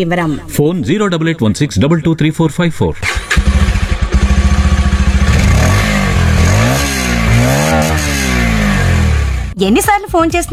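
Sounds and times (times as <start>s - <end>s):
speech: 0.0s - 3.5s, 9.6s - 10.5s
motorcycle engine idling and revving: 3.0s - 9.6s.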